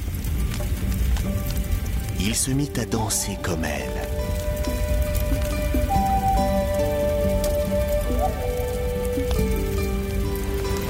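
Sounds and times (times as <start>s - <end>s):
steady heavy rain pattering and hissing: 0.0s - 10.8s
soft sustained musical tones: 0.1s - 10.8s
speech: 2.2s - 4.2s.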